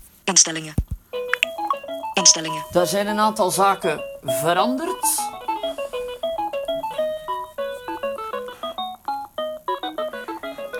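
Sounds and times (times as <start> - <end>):
speech: 0.4 - 0.9, 2.2 - 5.8
phone ringing with a melodic electronic ringtone: 1.2 - 10.7.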